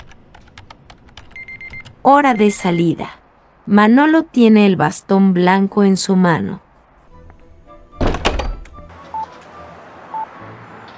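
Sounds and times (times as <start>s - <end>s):
typing on a computer keyboard with a braille display: 0.0s - 2.0s
speech: 2.0s - 6.6s.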